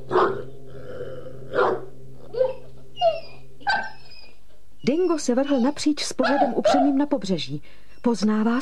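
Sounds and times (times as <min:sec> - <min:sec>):
dog giving mournful whining yelps: 0:01.6 - 0:07.0
speech: 0:04.8 - 0:08.5.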